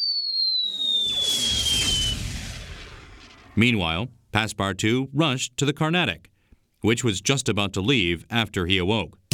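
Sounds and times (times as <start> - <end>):
thin high whistle gliding downward: 0.0 - 3.4
small signal cannon firing: 0.7 - 3.6
speech: 3.6 - 9.2.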